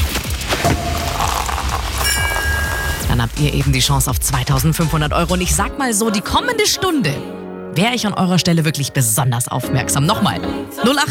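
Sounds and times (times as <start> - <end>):
fizzing and hissing sparkling wine bubbles: 0.1 - 3.1
sparkling wine cork popping: 0.6 - 3.1
speech: 3.4 - 11.0.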